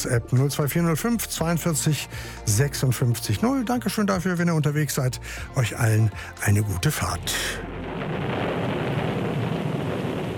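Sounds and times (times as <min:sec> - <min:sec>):
speech: 0:00.0 - 0:07.7
steady heavy rain hissing: 0:06.1 - 0:10.3
deep rumble of thunder: 0:07.0 - 0:10.3.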